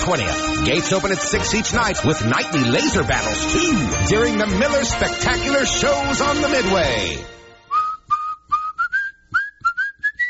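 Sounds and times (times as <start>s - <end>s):
speech: 0.0s - 7.4s
person whistling a short bright melody: 7.7s - 10.2s.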